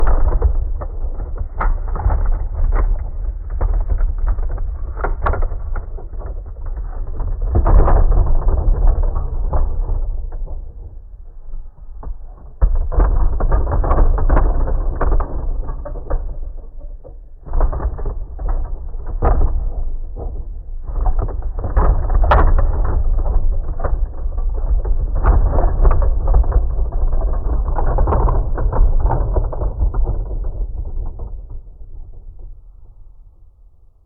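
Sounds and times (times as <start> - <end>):
Great Wall collapsing: 0.0 - 33.7.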